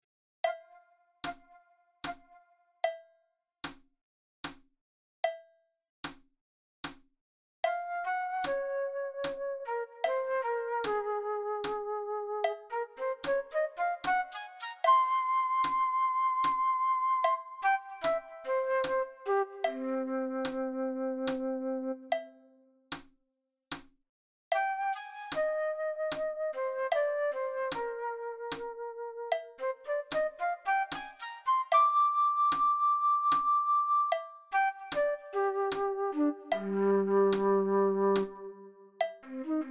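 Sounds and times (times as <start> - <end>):
fast flute playing: 7.8 - 22.0, 24.6 - 38.6.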